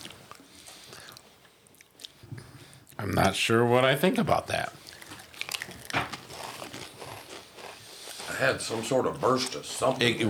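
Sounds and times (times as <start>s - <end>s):
speech: 3.0s - 4.8s, 8.4s - 10.2s
biting and chewing a chili cheese flavored potato chip: 4.8s - 8.4s.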